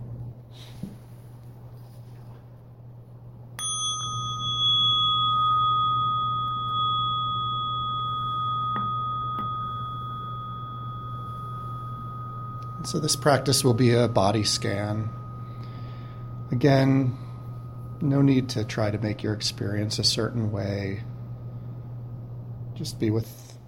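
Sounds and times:
low steady hum: 0.0s - 23.6s
single bell struck with a clear sustained metallic tone: 3.6s - 20.9s
speech: 12.8s - 15.2s, 16.6s - 17.2s, 18.0s - 21.1s, 22.8s - 23.5s.

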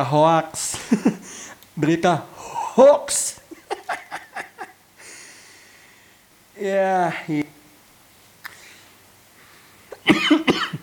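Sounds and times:
speech: 0.0s - 3.4s, 6.6s - 7.6s, 10.0s - 10.7s
quiet breathing: 1.2s - 1.7s, 2.3s - 2.8s, 5.0s - 6.4s, 8.4s - 10.0s
laughter: 3.5s - 4.8s
person coughing harshly: 9.9s - 10.8s.

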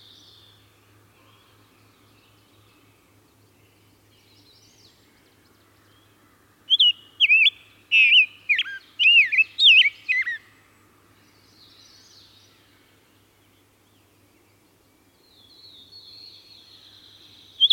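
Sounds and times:
Rose-breasted Grosbeak singing rich warbling phrases: 6.7s - 10.4s, 17.5s - 17.7s.

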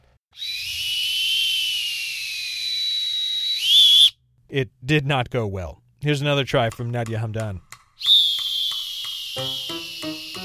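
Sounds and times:
person imitating an oscillating lifeguard whistle: 0.4s - 4.2s, 8.0s - 10.4s
speech: 4.5s - 7.7s.

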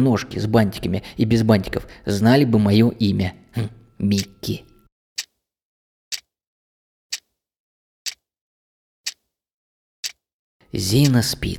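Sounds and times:
speech: 0.0s - 4.7s, 10.7s - 11.5s
clock ticking: 0.0s - 5.3s, 10.0s - 11.5s.

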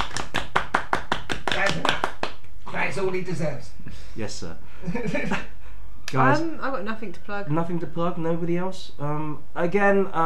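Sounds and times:
small group applauding: 0.0s - 2.6s
speech: 1.6s - 2.0s, 2.8s - 10.2s
laughter: 4.8s - 5.6s.

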